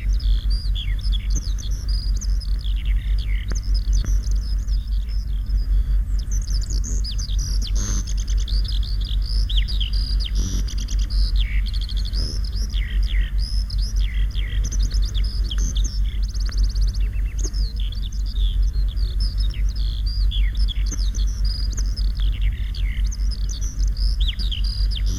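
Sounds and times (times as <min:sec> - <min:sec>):
Eurasian Skylark singing high song in spring: 0:00.0 - 0:25.1
low rumbling noise: 0:00.0 - 0:25.1.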